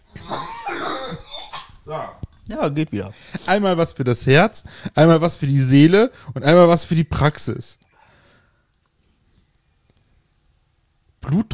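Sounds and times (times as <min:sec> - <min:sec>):
person coughing: 0:00.2 - 0:02.2
speech: 0:01.9 - 0:07.8, 0:11.3 - 0:11.5.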